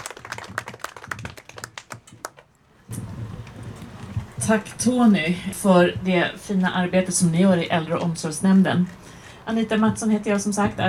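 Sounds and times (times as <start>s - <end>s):
audience applause at a municipal gathering in Tyresö, Sweden: 0.0s - 2.4s
low steady rustle: 2.5s - 10.8s
speech: 4.4s - 10.8s.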